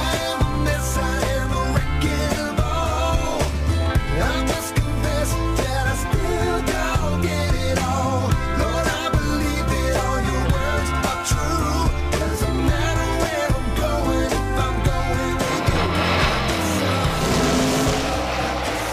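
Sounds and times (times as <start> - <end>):
NASCAR-style race car engine roar with shifting tones: 0.0 - 18.9
race car tire squeal: 15.4 - 18.9.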